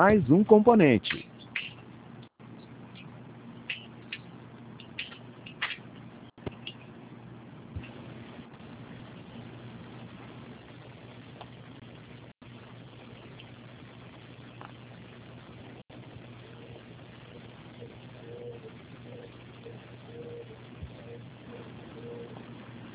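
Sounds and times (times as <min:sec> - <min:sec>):
speech: 0:00.0 - 0:01.3
constant low mechanical hum: 0:00.0 - 0:22.9
owl hooting: 0:17.8 - 0:22.4.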